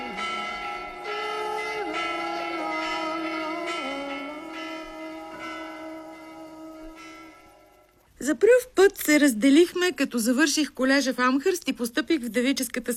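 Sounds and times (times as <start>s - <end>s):
church bell ringing: 0.0s - 8.0s
speech: 8.3s - 12.9s.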